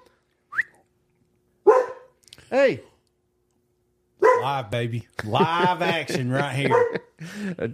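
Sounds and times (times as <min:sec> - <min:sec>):
dog barking: 0:01.6 - 0:02.2, 0:04.2 - 0:04.6, 0:06.6 - 0:07.1
dog yipping: 0:01.7 - 0:02.2, 0:04.2 - 0:04.5
speech: 0:02.5 - 0:02.9, 0:04.4 - 0:07.7
laughter: 0:05.1 - 0:07.7.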